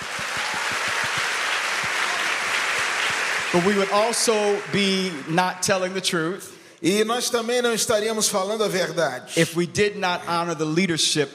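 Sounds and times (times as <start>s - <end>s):
large crowd clapping: 0.0s - 6.4s
speech: 3.5s - 11.3s.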